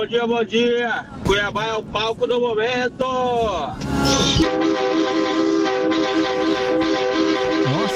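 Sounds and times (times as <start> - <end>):
speech: 0.0 - 7.9
vehicle horn honking: 3.9 - 7.9.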